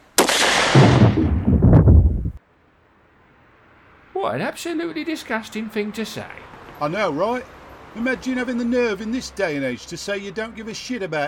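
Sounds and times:
gunshot fired at range: 0.2s - 2.4s
speech: 4.3s - 11.2s.

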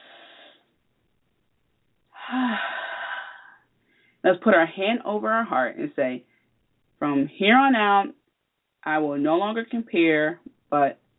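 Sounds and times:
deep breathing during a guided breathing pause: 0.0s - 0.7s, 2.1s - 4.2s
speech: 2.3s - 2.7s, 4.2s - 6.3s, 7.0s - 8.2s, 8.8s - 11.0s.

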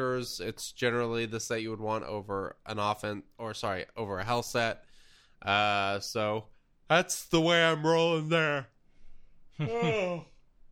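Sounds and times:
speech: 0.0s - 8.7s, 9.6s - 10.3s
quiet room noise: 0.0s - 10.7s
person yawning: 9.6s - 10.4s.

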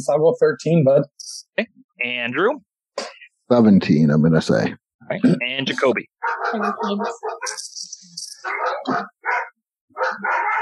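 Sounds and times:
speech: 0.0s - 7.7s, 8.4s - 9.2s
several dogs barking excitedly: 6.2s - 7.7s, 8.4s - 10.6s.

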